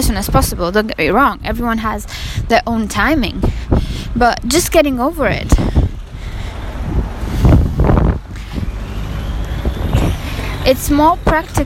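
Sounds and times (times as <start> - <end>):
speech: 0.0 - 5.8, 10.6 - 11.6
cars passing: 0.0 - 11.6
street traffic rumbling: 0.0 - 11.6
wind buffeting the microphone: 0.0 - 11.6.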